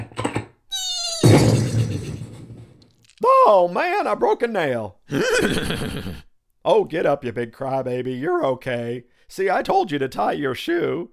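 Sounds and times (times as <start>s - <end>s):
horse whinnying as it trips: 0.7s - 2.3s, 5.1s - 6.3s
loud crashing thud: 1.2s - 2.9s
speech: 3.5s - 11.1s.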